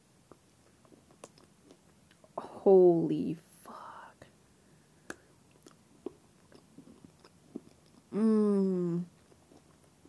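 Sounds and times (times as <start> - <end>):
crunchy chewing of coffee chocolate with coffee bean bits: 0.3 - 2.4, 5.0 - 8.2, 9.0 - 10.0
speech: 2.6 - 3.5
loud sustained hummed vocal sound: 8.1 - 9.1.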